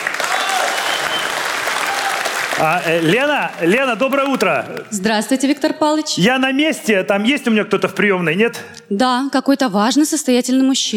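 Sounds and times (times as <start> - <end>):
large audience applause: 0.0 - 5.0
speech: 2.6 - 10.9.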